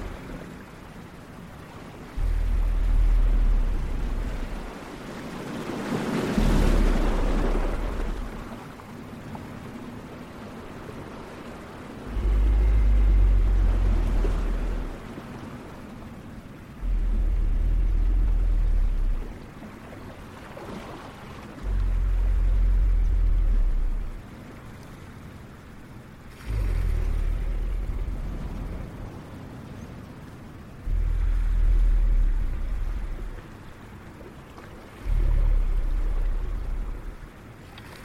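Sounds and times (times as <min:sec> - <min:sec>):
soft steady wash of ocean waves: 0:00.0 - 0:38.0
deep rumbling dragon breaths: 0:02.2 - 0:04.8, 0:06.2 - 0:08.6, 0:12.0 - 0:15.1, 0:16.8 - 0:19.4, 0:21.6 - 0:24.2, 0:26.3 - 0:29.0, 0:30.8 - 0:33.6, 0:35.0 - 0:37.3.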